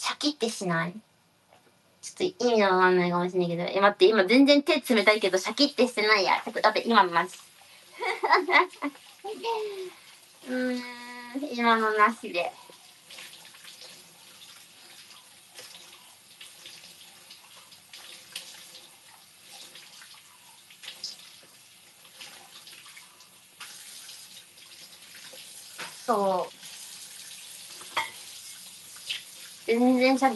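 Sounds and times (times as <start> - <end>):
speech: 0.2 - 1.1, 2.0 - 12.6, 26.1 - 26.6, 29.7 - 30.3
tap water running: 4.8 - 30.3
faint clink: 28.0 - 28.2.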